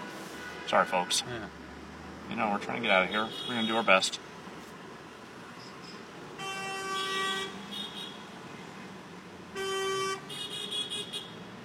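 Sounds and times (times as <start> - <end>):
speech: 0.7 - 1.6, 2.3 - 4.3
car horns honking in stalled traffic: 2.9 - 4.2, 6.4 - 8.3, 9.5 - 11.4.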